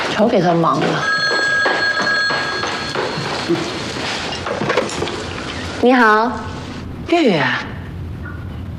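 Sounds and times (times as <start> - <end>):
speech: 0.2 - 1.1, 3.5 - 3.8, 5.8 - 6.5, 7.1 - 7.7
telephone ringing with a steady electronic trill: 0.8 - 5.6.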